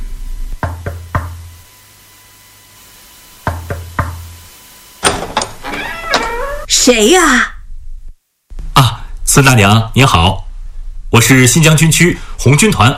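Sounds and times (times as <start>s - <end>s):
sharp knocks on a door: 0.6s - 1.4s, 3.4s - 4.2s
speech: 6.7s - 7.5s, 8.8s - 10.4s, 11.1s - 12.9s.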